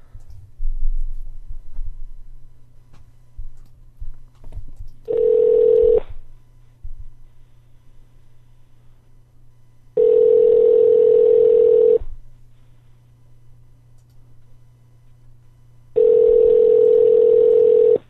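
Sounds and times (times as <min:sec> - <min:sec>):
low hum: 0:00.0 - 0:18.0
ringing tone of an outgoing Skype call on a PC: 0:05.1 - 0:06.0, 0:10.0 - 0:12.0, 0:16.0 - 0:18.0.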